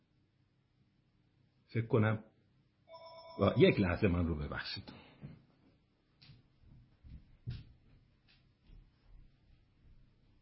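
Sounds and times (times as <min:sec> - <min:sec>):
speech: 0:01.7 - 0:02.3, 0:03.4 - 0:05.4
electronic phone low-battery alert beep: 0:02.9 - 0:04.0.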